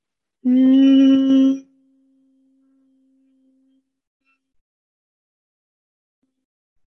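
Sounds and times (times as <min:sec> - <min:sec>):
person humming a steady tone on the exhale: 0:00.4 - 0:01.8.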